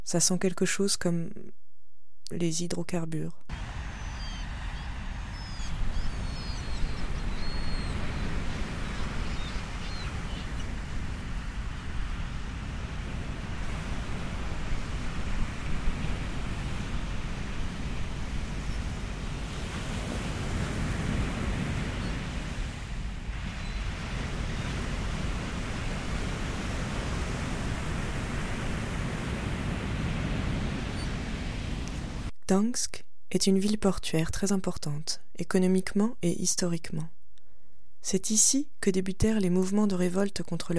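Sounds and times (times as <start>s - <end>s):
speech: 0.1s - 1.4s, 2.3s - 3.7s, 32.5s - 37.2s, 38.0s - 40.7s
waves washing ashore at the seashore in Gdańsk: 3.6s - 32.3s.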